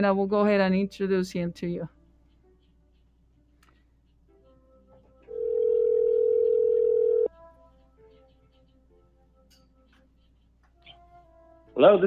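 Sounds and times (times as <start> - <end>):
speech: 0.0 - 2.0, 11.8 - 12.0
telephone ringing tone from a studio call: 5.3 - 7.3.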